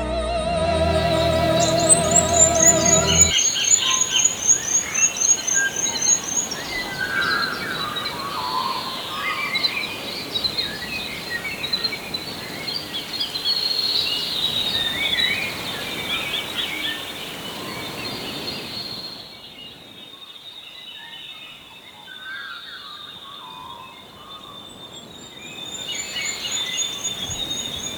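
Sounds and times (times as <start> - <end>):
brief musical tone: 0.0 - 3.4
dense birdsong in a forest clearing: 0.8 - 27.9
steady insect-like hiss: 1.0 - 19.2, 25.5 - 27.9.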